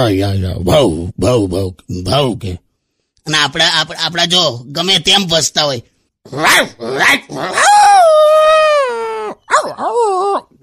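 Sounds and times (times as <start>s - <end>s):
speech: 0.0s - 2.6s, 3.2s - 8.3s
dog yelping, howling and whining: 6.4s - 10.5s.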